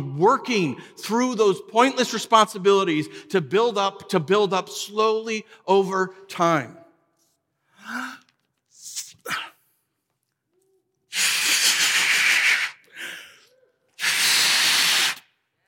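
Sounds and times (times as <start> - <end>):
speech: 0.0 - 6.8, 7.8 - 8.2
air hissing while filling balloons: 11.1 - 12.8, 14.0 - 15.4.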